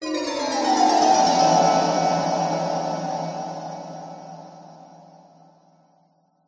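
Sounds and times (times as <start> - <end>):
sinister descending horror bell chimes: 0.0 - 5.1.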